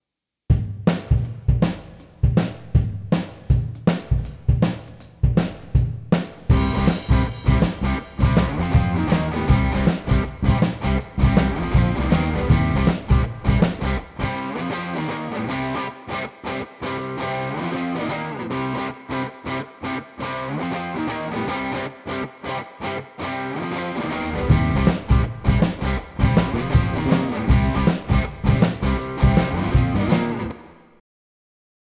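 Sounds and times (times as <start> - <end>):
rhythm guitar: 0.5 - 30.9.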